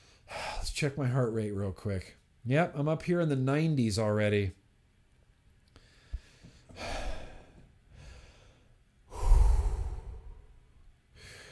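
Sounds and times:
speech: 0:00.8 - 0:04.6
person breathing deeply to lower heart rate: 0:05.8 - 0:11.5.

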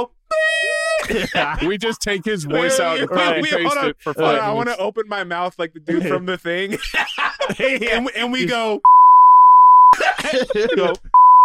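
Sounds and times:
speech: 0:00.0 - 0:00.4, 0:01.1 - 0:09.0, 0:10.0 - 0:11.2
person's voice: 0:00.0 - 0:08.8, 0:10.2 - 0:11.1
laughter: 0:00.9 - 0:04.7, 0:05.9 - 0:08.1, 0:10.0 - 0:11.2
steady loud mid-pitched censor beep tone: 0:08.8 - 0:10.0, 0:11.2 - 0:11.4.

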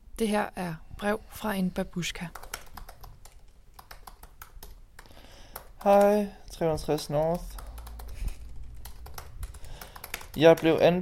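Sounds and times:
speech: 0:00.2 - 0:02.5, 0:05.8 - 0:07.6, 0:10.4 - 0:10.9
computer keyboard typing: 0:02.2 - 0:10.9.

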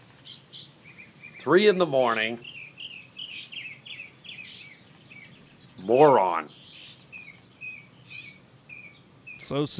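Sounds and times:
bird singing varied chirps and whistled phrases in a yard at night: 0:00.0 - 0:09.7
faint hiss: 0:00.0 - 0:09.7
speech: 0:01.4 - 0:02.5, 0:05.9 - 0:06.6, 0:09.5 - 0:09.7.

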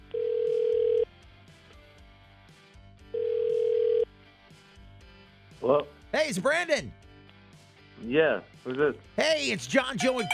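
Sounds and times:
telephone ringback tone heard while calling: 0:00.1 - 0:01.0, 0:03.2 - 0:04.0, 0:10.0 - 0:10.3
speech: 0:05.7 - 0:07.0, 0:08.0 - 0:10.3.

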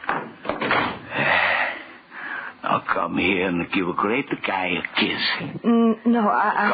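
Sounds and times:
door being pushed shut: 0:00.1 - 0:01.0
speech: 0:03.0 - 0:06.7.

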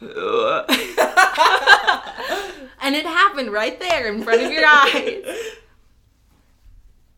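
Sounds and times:
drawn-out croaky burp with a wobbling pitch: 0:00.0 - 0:00.7
short abrupt hiccup-like gulping bursts: 0:00.0 - 0:00.7
laughter: 0:00.7 - 0:02.7, 0:04.1 - 0:05.6
speech: 0:03.4 - 0:05.5.

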